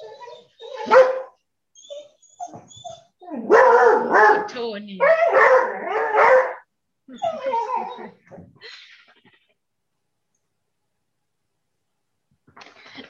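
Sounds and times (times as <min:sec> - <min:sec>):
dog barking and yelping at passerby: 0:00.0 - 0:08.4
speech: 0:04.6 - 0:06.3, 0:07.1 - 0:08.8.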